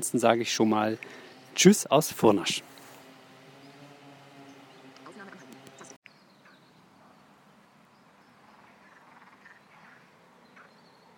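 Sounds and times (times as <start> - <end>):
speech: 0.0 - 2.7
dense chorus of frogs and toads croaking at a small pond: 4.7 - 7.2, 7.8 - 11.1.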